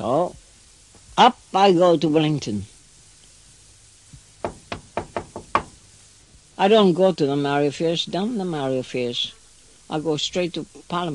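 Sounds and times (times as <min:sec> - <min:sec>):
speech: 0:00.0 - 0:00.4, 0:01.2 - 0:02.7, 0:06.6 - 0:11.1
knocking on a door: 0:04.4 - 0:05.8.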